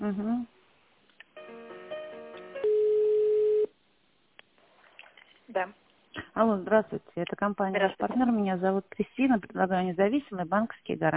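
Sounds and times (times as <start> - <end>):
speech: 0.0 - 0.5, 5.6 - 5.8, 6.4 - 11.1
steady telephone ringing tone during call transfer: 2.5 - 3.7.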